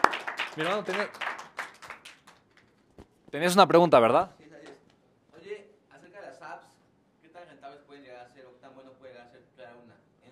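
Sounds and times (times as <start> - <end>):
scattered hand clapping from a few people: 0.0 - 3.1
speech: 0.6 - 1.3, 3.3 - 4.4.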